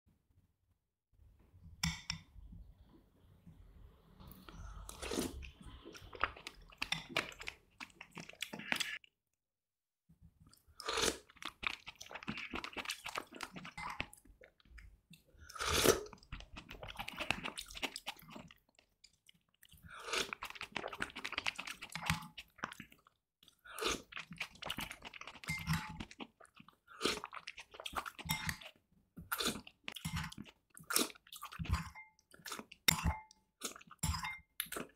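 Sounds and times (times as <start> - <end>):
person eating soup: 3.9 - 9.1, 10.5 - 34.9.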